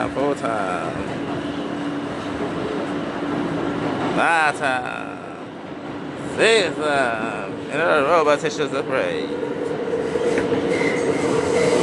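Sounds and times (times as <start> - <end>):
speech: 0.0 - 1.2, 4.2 - 5.1, 6.4 - 9.6
New York subway train rumbling in motion: 0.0 - 11.8
subway train wheel squeal: 10.0 - 11.8.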